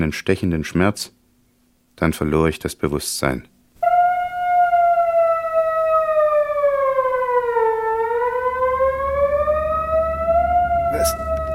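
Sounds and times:
speech: 0.0 - 1.2, 2.0 - 3.5
ambulance siren wailing: 3.8 - 11.5.

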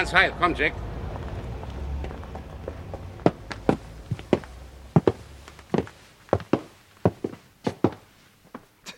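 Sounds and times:
speech: 0.0 - 0.9
low rumble: 0.8 - 7.9
several people and children running across a hard surface: 1.2 - 8.0.

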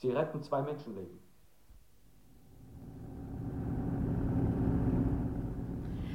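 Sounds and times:
speech: 0.0 - 1.3
car engine roaring: 2.2 - 6.1.

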